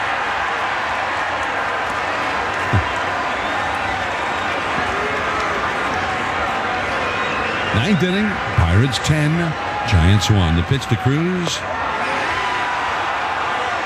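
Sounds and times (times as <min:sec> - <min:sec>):
scattered cheers and claps of a small baseball stadium crowd: 0:00.0 - 0:13.8
small crowd roar at a baseball stadium: 0:00.0 - 0:13.8
speech: 0:07.8 - 0:11.8.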